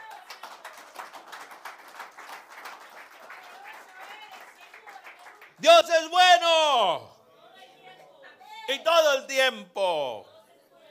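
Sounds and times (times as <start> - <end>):
crowd applauding during preaching: 0.0 - 5.9
speech: 5.6 - 7.1, 8.7 - 10.3.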